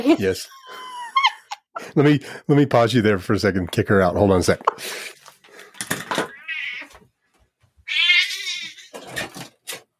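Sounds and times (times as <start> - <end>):
speech: 0.0 - 0.8, 1.8 - 5.2
laughter: 0.0 - 1.9
cat meowing: 6.2 - 7.0, 7.8 - 9.0.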